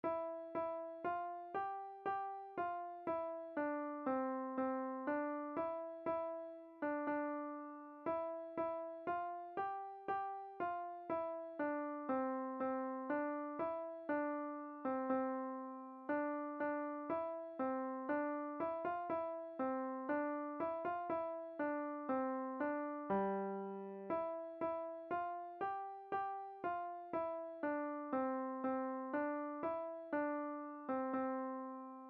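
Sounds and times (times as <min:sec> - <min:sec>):
piano played by ear: 0:00.1 - 0:32.0.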